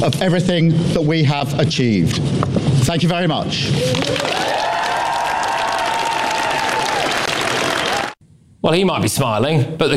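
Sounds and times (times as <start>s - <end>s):
speech: 0.0s - 4.7s, 8.6s - 9.9s
large crowd applauding: 3.8s - 8.2s.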